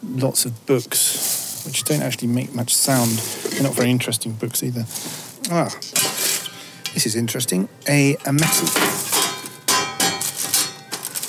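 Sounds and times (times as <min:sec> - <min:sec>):
speech: 0:00.0 - 0:06.1, 0:06.9 - 0:09.1
metal dish being handled and struck: 0:03.0 - 0:04.0, 0:05.5 - 0:11.2.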